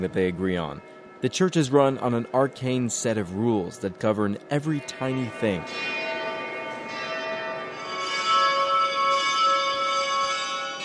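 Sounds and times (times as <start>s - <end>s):
speech: 0.0s - 6.0s
church bells ringing: 0.0s - 10.8s.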